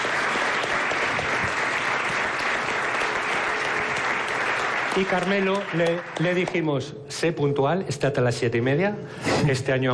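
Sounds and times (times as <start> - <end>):
crowd applauding a chef at a Michelin-star dinner event: 0.0 - 6.8
speech: 5.0 - 9.9.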